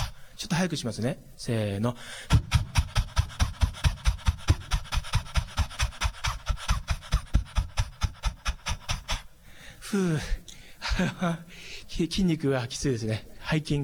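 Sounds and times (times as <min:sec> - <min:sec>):
rapid panting breaths forced out while pushing the belly in during an exercise: 0:00.0 - 0:00.4, 0:02.0 - 0:11.9
speech: 0:00.4 - 0:02.6, 0:09.9 - 0:10.4, 0:11.0 - 0:13.8.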